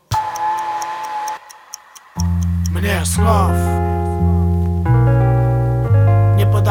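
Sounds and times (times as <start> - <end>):
steady ticking of a time bomb: 0.0 - 4.5
droning electronic tone: 0.1 - 5.8
speech: 2.2 - 4.4.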